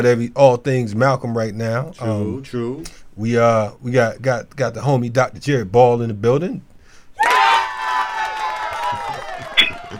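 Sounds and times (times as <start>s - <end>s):
speech: 0.0s - 6.7s
loud crowd cheering and screaming sound effect: 7.2s - 9.9s.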